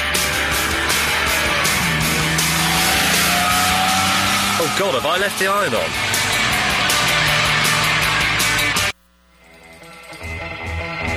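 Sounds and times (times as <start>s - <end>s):
Triumph TR6 sports car engine roaring on an open road: 0.0s - 8.9s
tire screech: 0.6s - 8.8s
speech: 4.8s - 6.0s.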